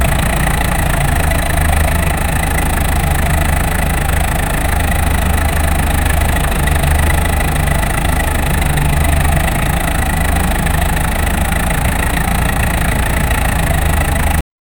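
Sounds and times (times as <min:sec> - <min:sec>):
Nissan Skyline R34 car engine: 0:00.0 - 0:14.4.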